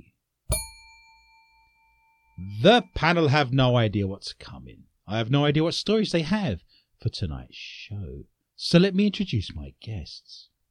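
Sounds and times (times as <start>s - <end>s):
single bell struck once ringing: 0.5s - 3.0s
speech: 2.4s - 10.5s.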